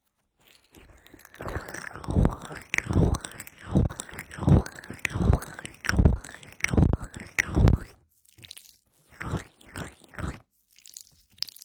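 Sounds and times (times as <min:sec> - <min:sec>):
wet sticky aloe gel squished and pressed: 0:00.8 - 0:10.4.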